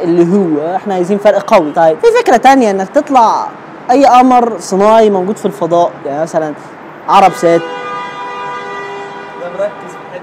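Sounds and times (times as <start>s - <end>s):
speech: 0.0s - 7.9s, 9.6s - 9.8s
car horn honking outside: 7.1s - 10.2s.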